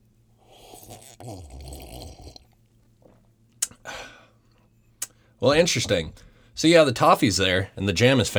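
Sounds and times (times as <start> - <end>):
person sipping a cup of hot coffee: 0.4 - 3.8
swallow: 0.4 - 4.0
speech: 1.2 - 1.7, 5.4 - 8.3.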